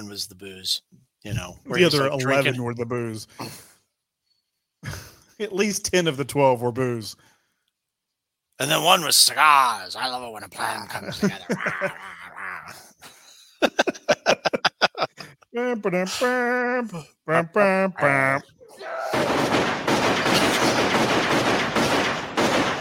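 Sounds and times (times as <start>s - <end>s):
speech: 0.0s - 3.7s, 4.8s - 7.3s, 8.6s - 12.8s, 13.6s - 14.0s, 15.6s - 19.7s
laughter: 10.6s - 18.5s
loud shouting voices: 18.0s - 19.6s
automatic gunfire from a movie: 19.1s - 22.7s.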